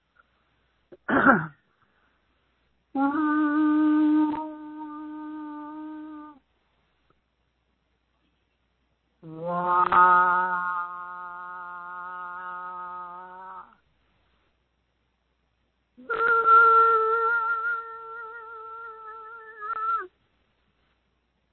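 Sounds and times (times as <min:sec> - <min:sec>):
speech: 0:01.2 - 0:01.6
single voice singing long wordless sustained tones: 0:03.0 - 0:06.4, 0:09.2 - 0:13.8, 0:16.0 - 0:20.1.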